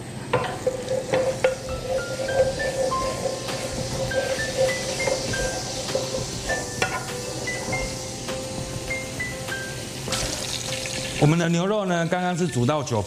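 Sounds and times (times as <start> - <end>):
chili oil heating in a pre-heated wok: 0.2 - 13.0
speech: 11.2 - 13.0.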